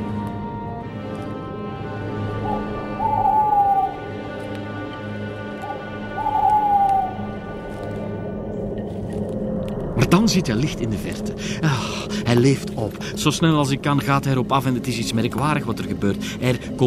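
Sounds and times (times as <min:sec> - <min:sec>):
owl hooting in the Sonian Forest: 0:02.1 - 0:04.3, 0:05.6 - 0:07.5
steady low rumbling background: 0:07.1 - 0:16.8
speech: 0:10.1 - 0:16.8.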